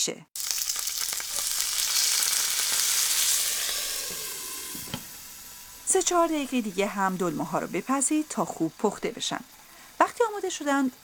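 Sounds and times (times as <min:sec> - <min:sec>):
speech: 0:00.0 - 0:00.5, 0:05.9 - 0:09.6, 0:10.2 - 0:11.0
stuffed vegetables sizzling in a hot pot with water: 0:00.4 - 0:11.0
pot lid clinking: 0:03.3 - 0:05.3.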